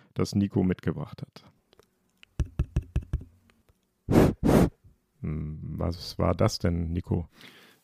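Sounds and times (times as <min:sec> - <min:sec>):
speech: 0:00.2 - 0:01.6, 0:05.8 - 0:07.6
breathy gusts of air blown into a microphone: 0:04.1 - 0:04.8.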